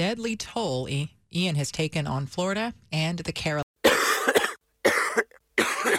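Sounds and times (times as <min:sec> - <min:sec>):
speech: 0:00.0 - 0:03.6
person coughing harshly: 0:03.8 - 0:05.9.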